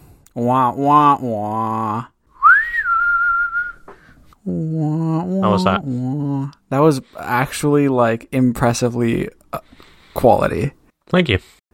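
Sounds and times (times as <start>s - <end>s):
speech: 0.4s - 2.1s, 4.4s - 11.6s
person whistling a lonesome Wild West ghost town style tune: 2.4s - 4.0s.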